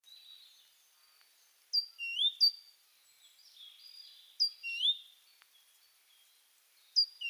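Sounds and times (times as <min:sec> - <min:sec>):
Parus major great tit giving upward-sweeping whistles and high thin notes: 0:00.1 - 0:07.2.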